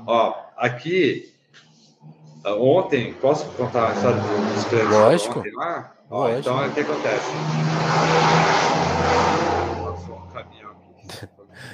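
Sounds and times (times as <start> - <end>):
speech: 0.0 - 9.6
car passing by quickly outside: 3.2 - 5.2, 6.5 - 10.8.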